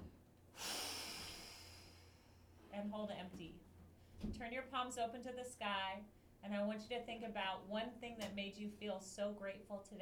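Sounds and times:
long exhaled breath during yoga breathing exercise: 0.6s - 2.5s
speech: 2.7s - 10.0s.

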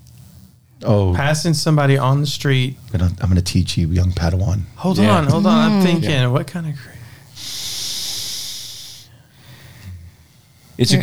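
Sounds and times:
speech: 0.8s - 7.5s, 10.8s - 11.0s
laughter: 4.8s - 7.0s, 10.8s - 11.0s
person exhaling vape vapor through the nostrils: 7.3s - 10.8s.

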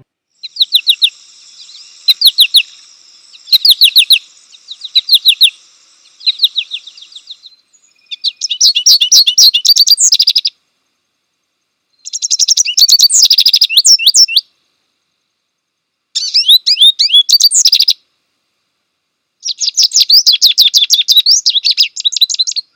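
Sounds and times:
American goldfinch calling in high twittering chirps: 0.4s - 10.6s, 11.9s - 14.5s, 16.2s - 18.0s, 19.4s - 22.7s.

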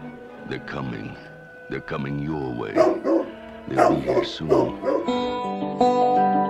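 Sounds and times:
speech: 0.5s - 6.4s
dog whining and whimpering: 2.8s - 5.2s.

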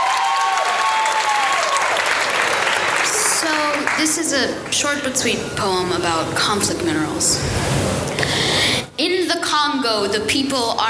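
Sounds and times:
audience applause: 0.0s - 4.1s
speech: 3.8s - 10.8s.

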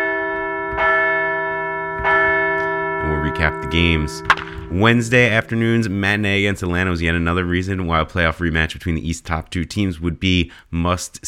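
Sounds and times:
large bell ringing: 0.0s - 7.5s
speech: 3.4s - 11.2s.

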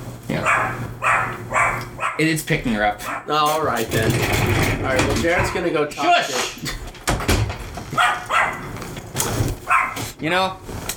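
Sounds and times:
speech: 0.3s - 1.6s, 2.2s - 6.7s, 10.2s - 10.6s
puppy barking in short sharp bursts: 0.3s - 2.3s, 3.0s - 3.4s, 7.9s - 8.8s, 9.6s - 10.1s.

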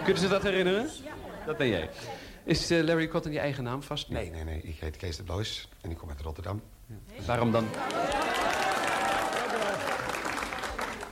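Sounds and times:
laughter: 0.0s - 2.4s, 7.2s - 10.4s
speech: 0.0s - 8.5s
studio audience applause: 7.3s - 11.1s.

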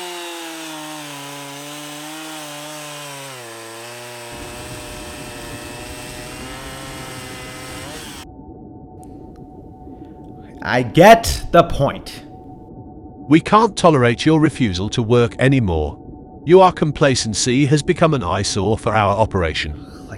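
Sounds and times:
chainsaw engine revving: 0.0s - 8.2s
speech: 10.6s - 12.2s, 13.3s - 20.1s.

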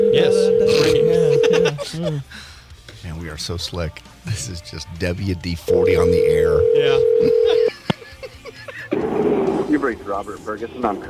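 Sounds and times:
telephone ringback tone on an outgoing call: 0.0s - 1.6s, 5.7s - 7.7s
laughter: 0.8s - 2.3s, 7.2s - 9.0s
speech: 1.9s - 7.7s, 9.9s - 11.0s.

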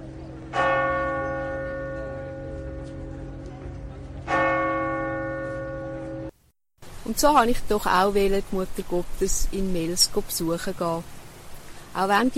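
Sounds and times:
large church bell in Lourdes ringing: 0.0s - 6.3s
speech: 7.1s - 11.2s, 12.0s - 12.3s.

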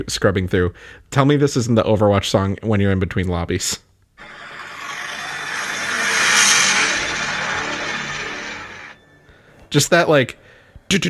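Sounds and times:
speech: 0.0s - 3.9s, 9.7s - 11.0s
car engine revving: 4.2s - 9.0s.

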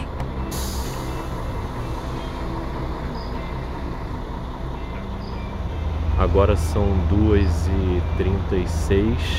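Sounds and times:
large bus engine rumbling at a roadside rest stop: 0.0s - 9.3s
bus air brakes hissing: 0.5s - 2.5s
speech: 6.2s - 9.3s.

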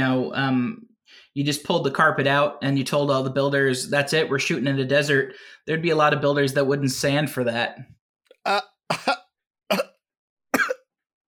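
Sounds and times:
speech: 0.0s - 9.1s
person coughing hoarsely from something caught in the throat: 8.5s - 10.0s, 10.6s - 10.9s.

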